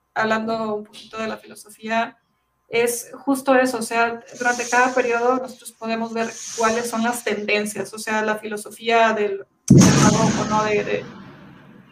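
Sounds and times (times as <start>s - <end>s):
speech: 0.2s - 11.2s
firecracker bang outside with rumble: 9.7s - 11.9s.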